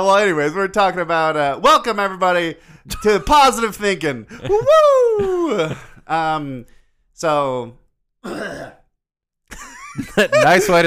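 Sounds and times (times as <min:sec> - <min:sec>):
speech: 0:00.0 - 0:08.8, 0:09.5 - 0:10.8
laughter: 0:04.3 - 0:06.1, 0:09.5 - 0:10.8
person clearing throat: 0:08.2 - 0:09.0.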